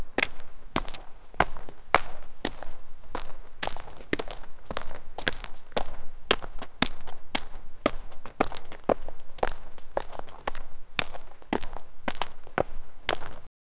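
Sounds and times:
dwarven footsteps: 0:00.0 - 0:13.5.

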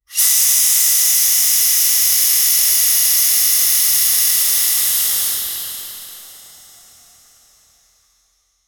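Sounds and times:
steam valve releasing: 0:00.1 - 0:06.8.

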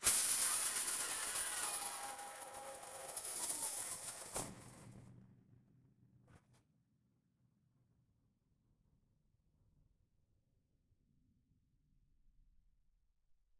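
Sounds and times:
futuristic sci fi metal crash: 0:00.0 - 0:05.0.

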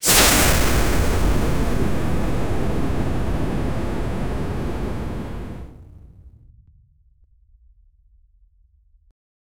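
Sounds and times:
explosion: 0:00.0 - 0:06.4.

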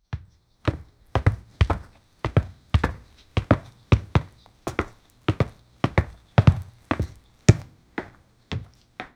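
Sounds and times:
boy running slowly on floor: 0:00.0 - 0:09.1.

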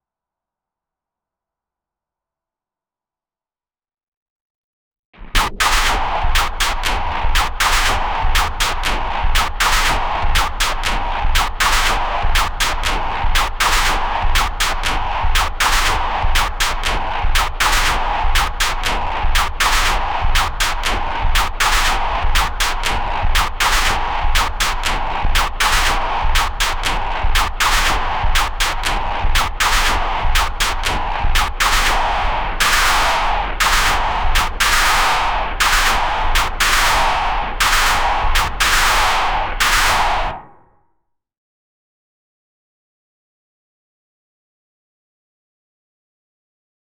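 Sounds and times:
futuristic robot laser gun shots: 0:05.3 - 0:12.8, 0:13.4 - 0:18.8, 0:19.4 - 0:20.8, 0:21.4 - 0:40.4.

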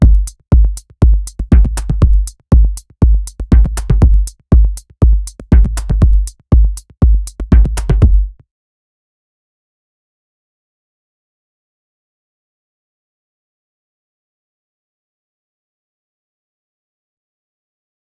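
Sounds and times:
minimal house drum rhythm: 0:00.0 - 0:08.4.

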